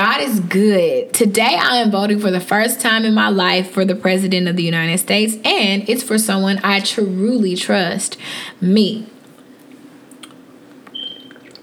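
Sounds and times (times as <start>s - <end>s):
low hum: 0.0s - 11.6s
speech: 0.1s - 9.1s
person drinking water with wet sips and swallowing clicks: 9.2s - 11.6s
squeaky gulp: 11.0s - 11.6s.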